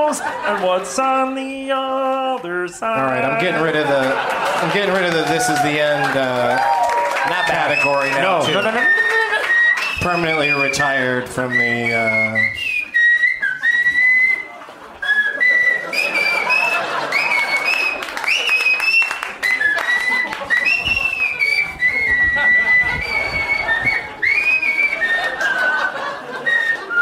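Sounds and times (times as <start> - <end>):
speech: 0.0 - 9.1, 10.0 - 12.7
crowd noise: 0.0 - 27.0
scattered clapping: 2.0 - 11.2, 11.8 - 27.0
people chuckling: 3.0 - 6.6, 7.3 - 12.5, 13.4 - 27.0
person whistling a wandering tune: 7.7 - 27.0.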